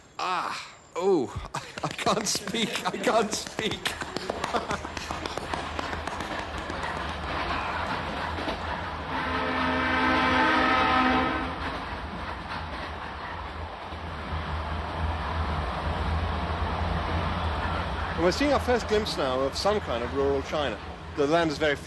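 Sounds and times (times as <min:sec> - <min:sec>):
speech: 0:00.2 - 0:05.3, 0:18.3 - 0:21.8
laughter: 0:01.4 - 0:09.0
train rolling on rails through flat rural China: 0:01.8 - 0:21.8
long train horn blast: 0:09.0 - 0:11.8.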